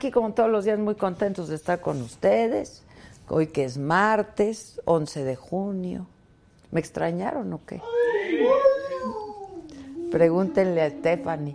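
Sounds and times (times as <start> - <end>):
speech: 0.0 - 9.2, 10.1 - 11.5
person imitating a wolf howl: 7.8 - 11.5.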